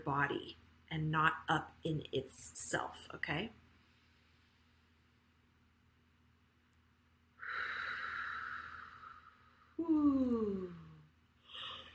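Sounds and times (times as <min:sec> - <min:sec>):
speech: 0:00.0 - 0:03.6
short breath: 0:07.4 - 0:09.8
person yawning with a long airy inhale and voiced exhale: 0:07.6 - 0:11.0.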